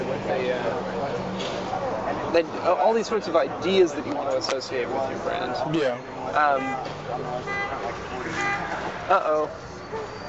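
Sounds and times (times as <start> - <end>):
steady street traffic: 0.0 - 10.2
speech: 2.3 - 8.5, 9.1 - 10.2
car alarm honking: 6.5 - 8.8.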